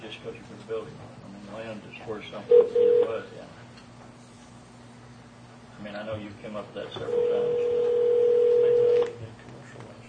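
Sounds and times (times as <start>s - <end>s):
speech: 0.2s - 3.6s, 5.8s - 7.9s
telephone dialing tone: 2.5s - 3.3s, 7.1s - 9.2s.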